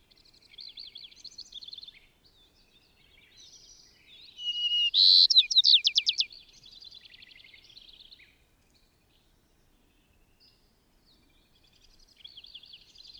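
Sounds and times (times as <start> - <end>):
bird warbling in high twittering phrases and trilled notes: 4.4 - 6.3.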